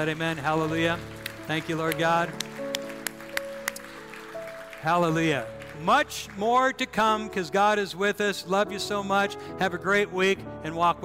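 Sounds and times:
speech: 0.0 - 2.5, 4.8 - 11.0
crisp hand claps in steady rhythm: 0.0 - 6.9.

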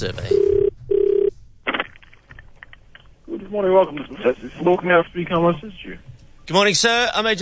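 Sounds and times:
speech: 0.0 - 0.4, 3.5 - 7.4
telephone ringing tone on an outgoing call: 0.3 - 1.3.

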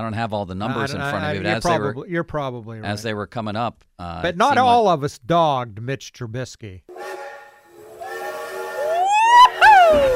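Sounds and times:
speech: 0.0 - 7.2
loud steam train whistle: 6.9 - 10.1.

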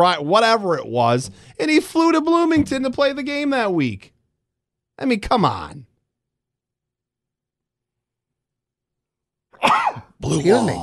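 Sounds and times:
speech: 0.0 - 4.1, 5.0 - 5.9, 9.6 - 10.8
person sneezing: 9.6 - 10.2.

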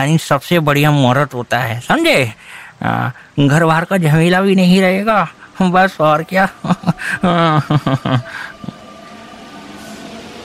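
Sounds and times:
speech: 0.0 - 8.8
metro train rattling past with metallic whine: 4.6 - 10.4
laughter: 6.2 - 8.8.

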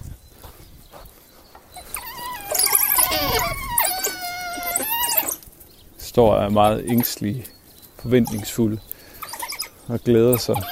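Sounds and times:
several dogs whining and howling together: 1.7 - 5.5, 8.1 - 8.6, 9.2 - 10.7
speech: 6.2 - 8.9, 9.9 - 10.7.

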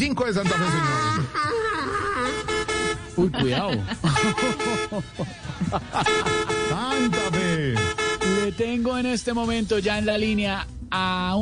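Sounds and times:
speech: 0.0 - 2.5, 3.2 - 11.3
laughter: 0.2 - 7.4
car horn honking: 0.3 - 1.4, 2.2 - 5.2, 5.9 - 9.2.

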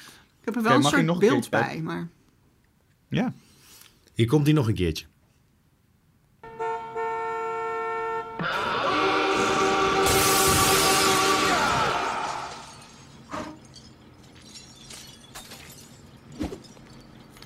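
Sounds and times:
speech: 0.5 - 2.2, 3.1 - 3.4, 4.2 - 5.1
horn-like tone blaring: 6.4 - 12.4
glass breaking: 10.0 - 17.4
glass shards tinkling: 12.5 - 17.4.

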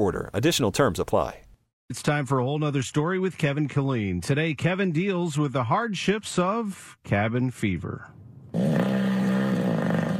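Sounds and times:
speech: 0.0 - 9.1
loud snoring: 8.6 - 10.1.

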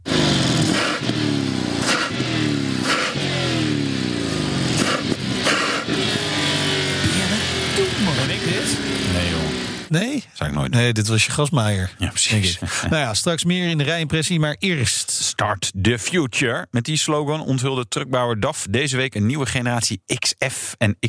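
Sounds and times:
V8 car engine revving: 0.0 - 10.0
speech: 9.9 - 21.0
laughter: 12.0 - 13.4.

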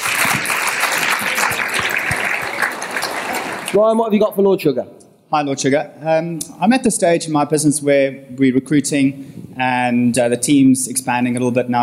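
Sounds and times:
crowd applauding: 0.0 - 4.0
speech: 3.7 - 11.8.

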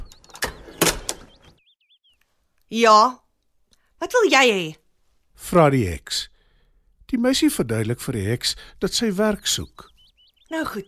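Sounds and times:
door of a small house opening: 0.0 - 1.5
faint bird chirps: 0.0 - 3.2, 7.8 - 10.8
speech: 2.7 - 3.2, 4.0 - 4.8, 5.4 - 6.3, 7.1 - 9.9, 10.5 - 10.8.

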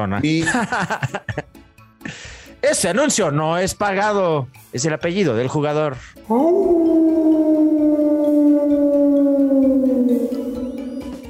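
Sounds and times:
speech: 0.0 - 7.5
laughter: 0.4 - 1.4
wolf howling: 6.3 - 11.2.

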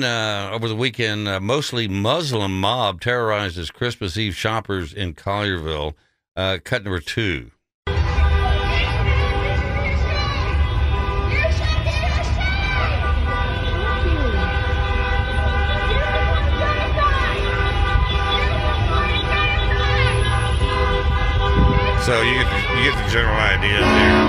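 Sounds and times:
speech: 0.0 - 7.6, 22.1 - 24.2
busy street noise: 7.9 - 24.2
many car horns honking: 7.9 - 24.2
crowd's indistinct voices: 8.0 - 20.7, 21.3 - 24.2.

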